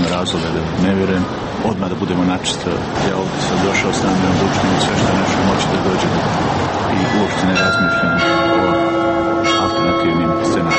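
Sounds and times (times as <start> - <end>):
speech: 0.2 - 9.2
church bells ringing at noon: 6.9 - 10.7.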